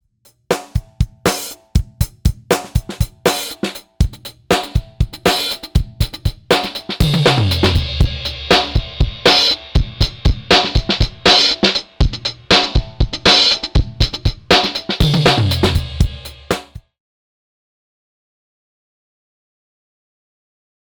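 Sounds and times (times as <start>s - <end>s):
driving drums effect: 0.3s - 16.9s.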